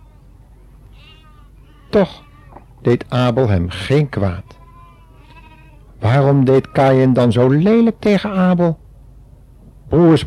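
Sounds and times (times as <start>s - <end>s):
sheep bleating: 0.9s - 2.8s, 3.7s - 7.3s
speech: 2.0s - 4.6s, 6.0s - 8.8s, 9.9s - 10.2s.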